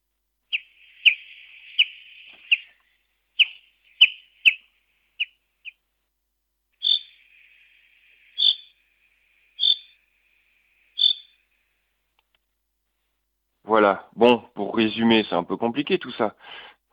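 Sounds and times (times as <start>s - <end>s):
songbird singing a buzzy trilling phrase with sharp chips: 0.4s - 5.9s, 6.7s - 11.8s
speech: 13.7s - 16.7s.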